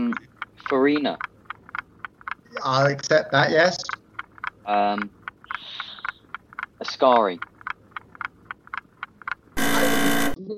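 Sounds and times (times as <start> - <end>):
light rapid ticking: 0.0 - 10.4
speech: 0.1 - 1.3, 2.5 - 4.0, 4.7 - 5.8, 6.8 - 7.5
loud harsh quiz buzzer: 9.6 - 10.4.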